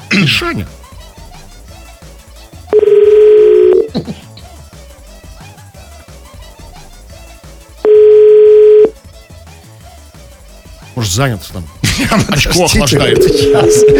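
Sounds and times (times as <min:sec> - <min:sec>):
speech: 0:00.2 - 0:00.8, 0:11.1 - 0:13.9
telephone tones while a call is placed: 0:02.8 - 0:03.9, 0:07.9 - 0:08.9, 0:13.1 - 0:13.9
laughter: 0:03.9 - 0:04.6, 0:11.8 - 0:13.9.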